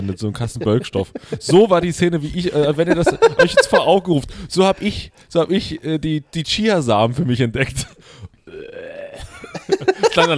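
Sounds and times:
laughter: 0.0 - 4.8, 9.2 - 10.3
speech: 0.0 - 8.1, 10.2 - 10.3
loud drawn-out croaky burp: 8.4 - 9.5.

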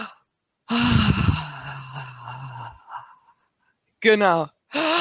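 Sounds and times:
deep audible breathing in and out during a breathing exercise: 0.7 - 3.5
speech: 4.0 - 4.9.

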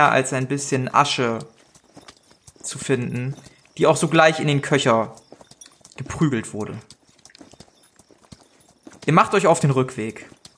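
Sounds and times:
speech: 0.0 - 1.6, 2.6 - 5.2, 6.0 - 6.9, 9.0 - 10.3
saddled horses' hooves clip-clopping: 0.0 - 10.5.

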